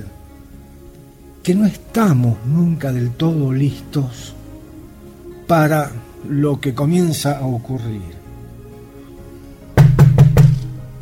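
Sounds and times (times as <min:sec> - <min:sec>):
speech: 0:01.5 - 0:04.4, 0:05.5 - 0:08.2
knocking on a door late at night: 0:09.8 - 0:10.7.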